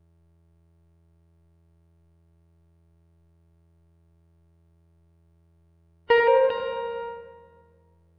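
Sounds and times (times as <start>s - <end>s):
guitar: 6.1s - 7.6s.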